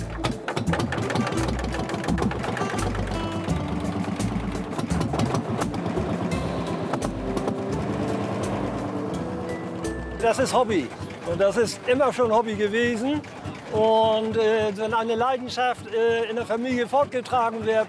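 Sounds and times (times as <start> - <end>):
motor running: 0.6 - 14.6
speech: 10.2 - 17.8.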